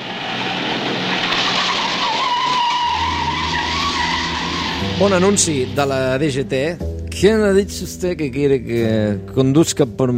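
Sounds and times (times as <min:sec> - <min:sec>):
car speeding off at full throttle: 0:00.0 - 0:07.0
car tyres skidding and squealing: 0:00.1 - 0:06.4
speech: 0:05.0 - 0:10.1.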